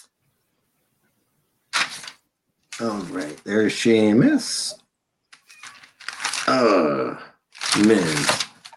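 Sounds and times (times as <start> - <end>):
paper sheets being flipped: 1.7 - 3.6, 5.3 - 6.6, 7.5 - 8.7
speech: 2.8 - 4.8, 6.5 - 8.4.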